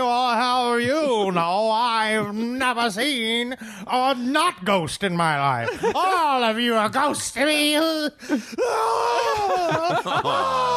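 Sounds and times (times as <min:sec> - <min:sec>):
speech: 0:00.8 - 0:10.7
laughter: 0:05.5 - 0:06.7, 0:08.4 - 0:10.7
person screaming with a long high wavering cry: 0:08.6 - 0:10.7.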